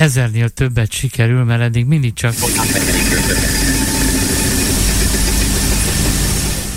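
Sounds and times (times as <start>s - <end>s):
speech: 0.0s - 3.4s
quiz game prize wheel spinning with a rattling whir: 2.3s - 6.7s.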